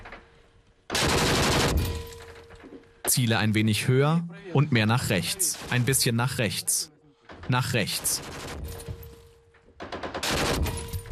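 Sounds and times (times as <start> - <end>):
volley of rifle fire at shooting practice: 0.9 - 2.1, 8.2 - 8.8, 9.9 - 11.0
speech: 3.1 - 6.9, 7.5 - 8.5.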